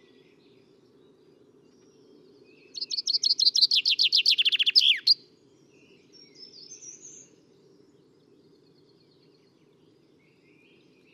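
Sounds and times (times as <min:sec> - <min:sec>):
Common chaffinch song: 0:02.6 - 0:05.2.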